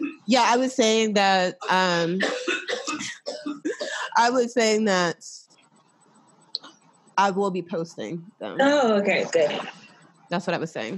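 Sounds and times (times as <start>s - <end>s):
speech: 0.3s - 2.5s, 4.2s - 5.4s, 7.2s - 10.9s
harsh coughs: 1.6s - 4.2s.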